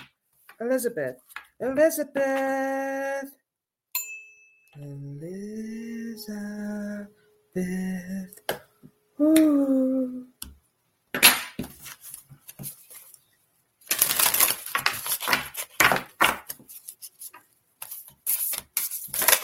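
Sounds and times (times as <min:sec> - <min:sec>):
speech: 0:00.6 - 0:03.4, 0:04.8 - 0:08.6, 0:09.2 - 0:10.2
tarot cards being shuffled: 0:11.6 - 0:13.2, 0:13.8 - 0:19.4.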